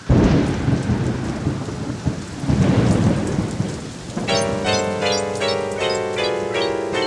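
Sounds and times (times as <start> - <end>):
deep thunder rumbling: 0.0 - 7.0
steady rain: 0.0 - 7.0
bright cheerful melody: 4.2 - 7.0.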